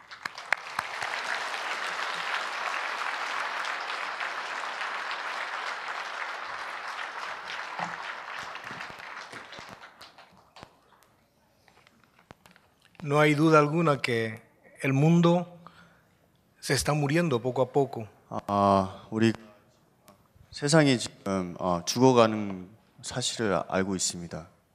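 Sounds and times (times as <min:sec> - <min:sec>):
audience applause in a church welcoming a guest: 0:00.0 - 0:10.9
speech: 0:13.1 - 0:15.6, 0:16.6 - 0:19.5, 0:20.6 - 0:24.6.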